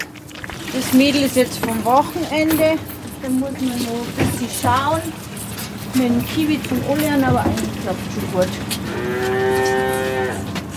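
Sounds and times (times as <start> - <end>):
low hum of a cattle barn: 0.0 - 10.7
speech: 0.8 - 5.4, 6.0 - 9.7
calf mooing in a cattle barn: 8.6 - 10.6.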